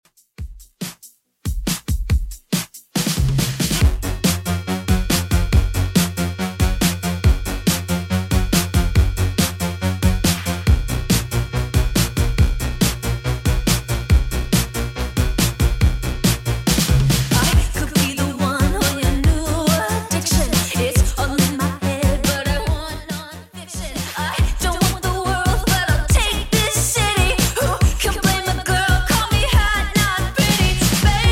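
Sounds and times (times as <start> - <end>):
clean Top40 pop music track: 1.7 - 31.3.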